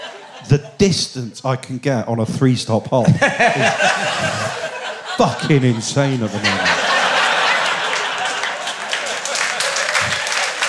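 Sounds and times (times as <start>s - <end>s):
laughter: 0.0s - 1.3s, 3.0s - 10.6s
speech: 0.4s - 4.6s, 5.2s - 6.8s
audience applause: 5.5s - 10.6s.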